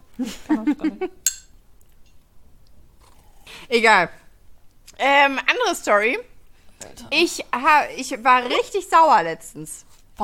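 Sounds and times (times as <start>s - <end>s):
speech: 0.2s - 1.2s, 3.7s - 4.2s, 5.0s - 10.2s
glasses clinking in a toast: 1.3s - 2.2s.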